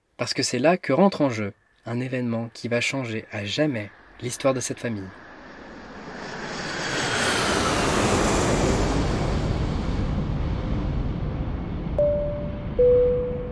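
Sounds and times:
speech: 0.2s - 5.2s
airplane engine roaring during takeoff: 2.5s - 13.5s
steady tones: 12.0s - 13.5s.

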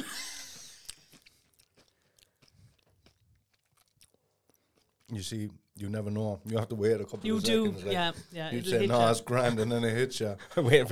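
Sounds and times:
crisp crunching of someone chewing a spicy snack: 0.6s - 5.2s
speech: 5.1s - 10.9s
laughter: 7.0s - 10.9s.

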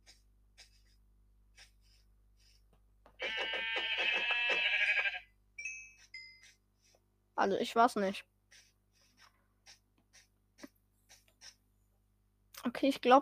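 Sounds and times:
video game sheep bleat: 3.2s - 5.3s
speech: 7.4s - 8.3s, 12.8s - 13.2s.

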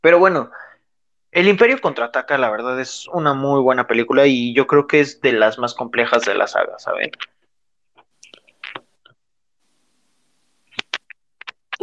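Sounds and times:
speech: 0.0s - 0.6s, 1.3s - 7.3s
person sipping and swallowing water: 8.0s - 9.2s.

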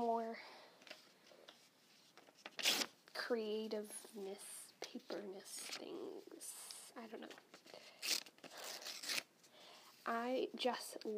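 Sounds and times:
speech: 0.0s - 0.6s, 3.3s - 7.9s, 10.1s - 11.1s
paper torn by hand: 2.4s - 3.0s, 7.3s - 9.3s.

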